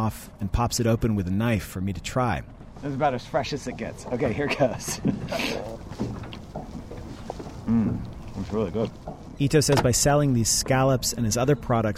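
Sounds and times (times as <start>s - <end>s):
speech: 0.0s - 6.2s, 7.7s - 11.9s
water sloshing and splashing against a fishing boat hull: 2.1s - 11.0s
laughter: 3.9s - 5.8s
soft knocks: 5.0s - 9.9s.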